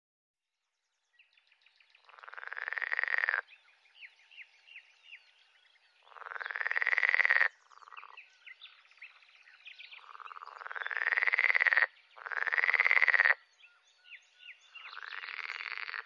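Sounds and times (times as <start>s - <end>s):
pool frog croaking: 2.1s - 3.5s, 6.0s - 8.3s, 10.0s - 13.4s, 14.7s - 16.0s.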